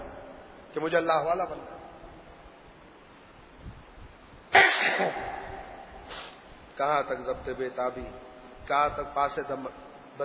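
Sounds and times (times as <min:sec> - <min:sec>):
speech: 0:00.7 - 0:01.8, 0:06.8 - 0:10.2
loud sneeze: 0:04.5 - 0:06.4.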